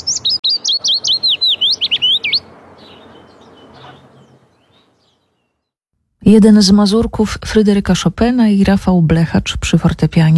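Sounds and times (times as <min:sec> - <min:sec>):
Willow Warbler song: 0:00.0 - 0:05.8
speech: 0:06.3 - 0:10.3.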